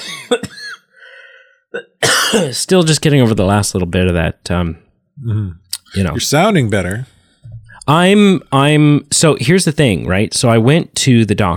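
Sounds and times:
person coughing: 0:00.0 - 0:00.9, 0:01.8 - 0:02.6
speech: 0:00.3 - 0:00.6, 0:01.7 - 0:07.2, 0:07.9 - 0:11.5.

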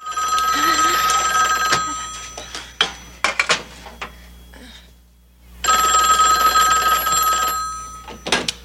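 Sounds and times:
telephone bell ringing in an apartment: 0:00.0 - 0:03.2, 0:05.6 - 0:08.4.

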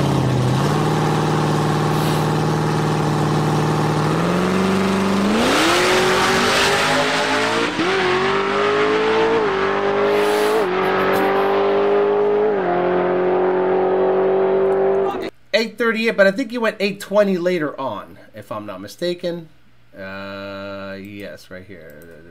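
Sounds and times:
Camaro drag racing car engine roaring as it launches and accelerates: 0:00.0 - 0:15.3
speech: 0:15.9 - 0:22.2.

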